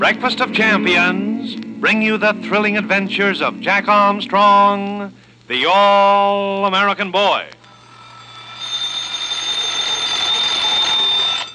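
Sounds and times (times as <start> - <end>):
speech: 0.0 - 7.6
several alarm clocks ringing in a metallic jangle: 7.7 - 11.5.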